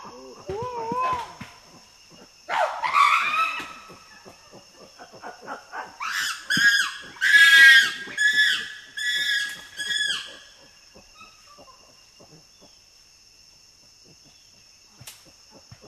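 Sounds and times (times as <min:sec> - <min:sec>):
common chimpanzee screams: 0:00.4 - 0:01.4, 0:02.5 - 0:04.4, 0:05.2 - 0:11.3.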